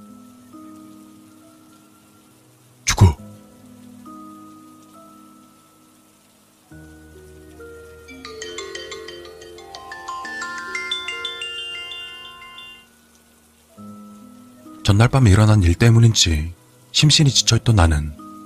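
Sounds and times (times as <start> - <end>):
phone ringtone melody: 8.1 - 13.0
speech: 14.9 - 18.2.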